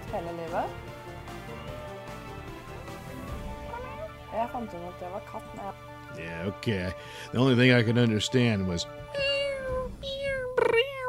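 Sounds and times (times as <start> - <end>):
speech: 0.1 - 0.9, 4.3 - 9.4
person imitating a cat's meow: 3.7 - 4.2, 9.1 - 11.0.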